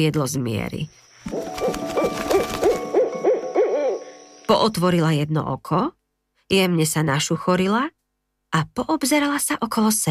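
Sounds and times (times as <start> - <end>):
speech: 0.0 - 2.3, 4.5 - 10.0
owl hooting: 1.2 - 4.5.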